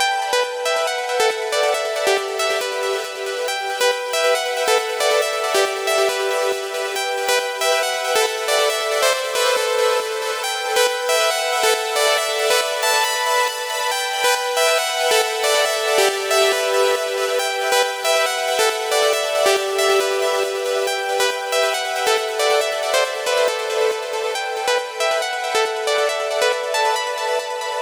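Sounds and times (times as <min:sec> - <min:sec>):
wet plucked synth bassline and melody in E minor: 0:00.0 - 0:27.8.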